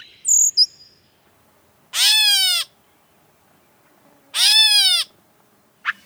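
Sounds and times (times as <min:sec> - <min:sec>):
catbird singing a medley of squeaky scratchy and whistled notes: 0:01.4 - 0:06.0.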